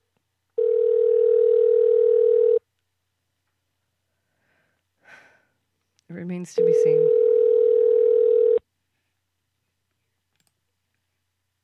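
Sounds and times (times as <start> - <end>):
loud steady telephone dial tone: 0.6 - 2.6, 6.6 - 8.6
speech: 6.1 - 7.4.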